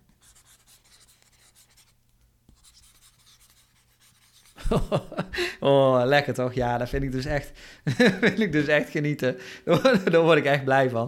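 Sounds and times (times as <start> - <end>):
stylus writing notes on a textured paper-like tablet screen: 0.1 - 4.6
laughter: 4.6 - 5.6, 7.9 - 8.7
speech: 4.7 - 11.0.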